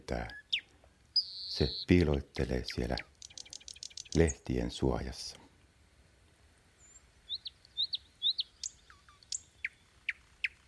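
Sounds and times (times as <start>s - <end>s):
thrush nightingale singing: 0.0s - 4.6s, 6.7s - 10.6s
speech: 0.1s - 0.4s, 1.6s - 3.1s, 4.1s - 5.4s.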